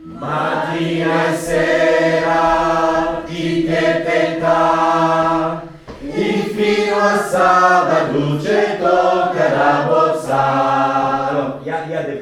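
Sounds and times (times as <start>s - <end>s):
contraltos singing: 0.0s - 12.0s.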